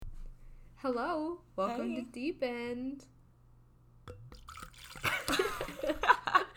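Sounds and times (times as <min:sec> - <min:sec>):
speech: 0:00.8 - 0:03.2
wine poured into a glass: 0:04.1 - 0:05.9.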